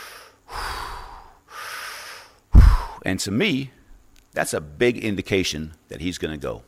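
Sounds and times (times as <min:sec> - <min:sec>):
voice imitating a man's heavy breathing: 0:00.0 - 0:03.1
speech: 0:03.0 - 0:03.8, 0:04.4 - 0:06.6.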